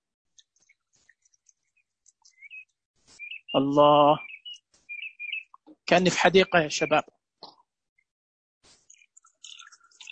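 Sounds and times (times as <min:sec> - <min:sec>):
faint crackling trickle of water: 0:00.3 - 0:02.7, 0:08.7 - 0:10.0
sparrows chirping: 0:00.4 - 0:07.0, 0:08.7 - 0:10.0
speech: 0:03.6 - 0:04.3, 0:05.9 - 0:07.2.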